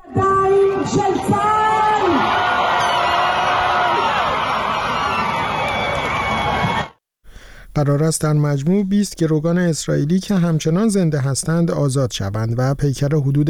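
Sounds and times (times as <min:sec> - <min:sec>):
large crowd of families shouting and cheering in Hostages Square, Tel Aviv, Israel: 0:00.0 - 0:07.0
speech: 0:00.8 - 0:01.5, 0:07.8 - 0:13.4
whoops and yells: 0:01.1 - 0:07.0.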